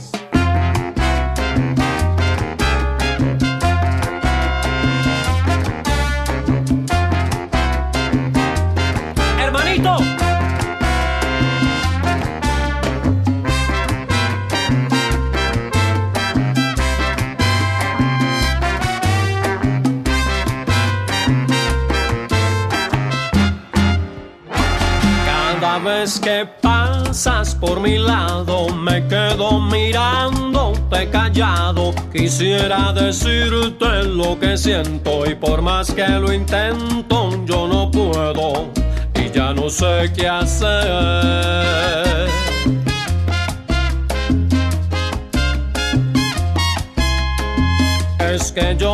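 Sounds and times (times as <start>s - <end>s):
driving bass line: 0.0s - 25.8s, 26.6s - 48.9s
lively romantic salsa song with male vocals: 0.0s - 48.9s
steady percussion: 0.0s - 48.9s
bright brass-like melodies: 0.3s - 26.4s, 41.6s - 48.5s
speech: 27.2s - 30.3s, 30.9s - 38.8s, 39.5s - 42.8s.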